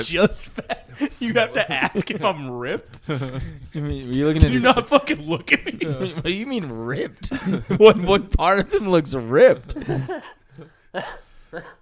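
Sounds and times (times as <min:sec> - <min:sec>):
laughter: 0:00.0 - 0:08.9, 0:09.7 - 0:11.1
speech: 0:00.0 - 0:11.7
harsh coughs: 0:11.0 - 0:11.7.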